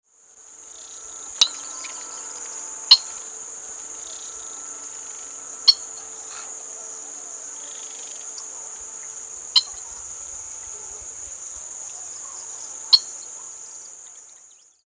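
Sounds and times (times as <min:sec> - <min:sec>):
Slaty-breasted Rail Gallirallus striatus: 0:01.0 - 0:14.3.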